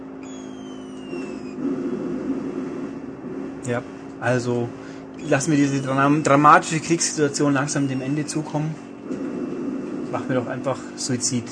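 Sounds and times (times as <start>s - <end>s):
thin high whine: 0.0s - 11.5s
video game car engine droning: 0.0s - 11.5s
speech: 3.7s - 8.9s, 10.1s - 11.5s.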